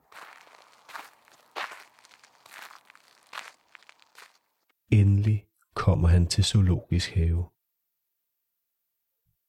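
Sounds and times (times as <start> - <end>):
footsteps crunching over gritty ground: 0.0 - 4.7
speech: 4.9 - 7.6.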